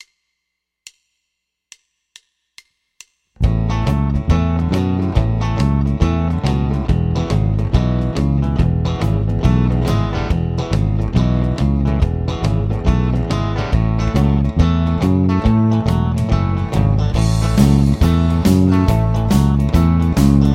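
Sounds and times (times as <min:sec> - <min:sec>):
country bass guitar playing: 0:03.4 - 0:20.5.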